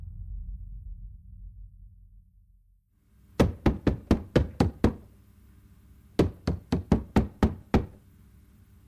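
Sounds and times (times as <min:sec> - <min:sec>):
sharp rapid knocking on a house door: 0:03.4 - 0:05.1, 0:06.2 - 0:08.0.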